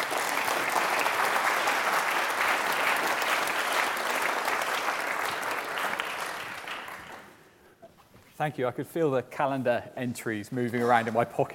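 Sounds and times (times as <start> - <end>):
audience applause: 0.0 - 7.4
speech: 8.4 - 11.5.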